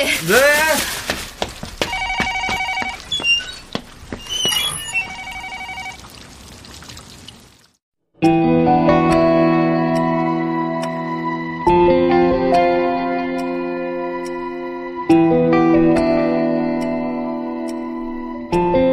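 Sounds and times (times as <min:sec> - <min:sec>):
speech: 0:00.0 - 0:01.0
telephone ringing with an incoming order call: 0:01.9 - 0:03.1, 0:04.9 - 0:06.0
trickling: 0:02.9 - 0:07.8
sustained music passage: 0:08.2 - 0:18.9.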